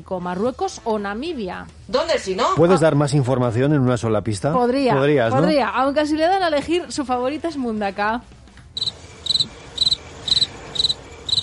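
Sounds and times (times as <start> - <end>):
speech: 0.0 - 8.4
single cricket chirping: 8.8 - 11.4.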